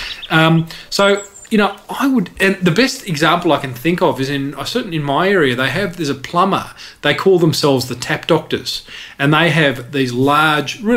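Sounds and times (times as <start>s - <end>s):
recorded bird calls playing from a website: 0.0s - 4.6s
speech: 0.3s - 10.9s.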